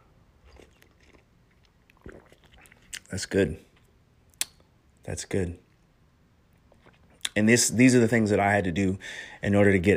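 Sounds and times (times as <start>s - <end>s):
person sipping coffee: 0.4s - 3.1s
person swallowing: 2.0s - 3.0s
speech: 3.1s - 3.7s, 5.1s - 5.6s, 7.4s - 9.9s.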